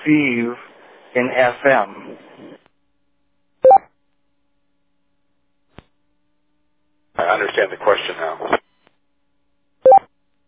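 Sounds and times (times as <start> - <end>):
speech: 0.0 - 2.6, 7.2 - 8.6
DTMF telephone keypad tones: 3.6 - 3.8.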